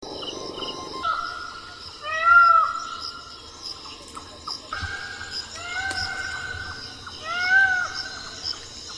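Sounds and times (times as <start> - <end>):
Indian peafowl giving meowing wails: 1.0 - 3.0, 4.7 - 8.3.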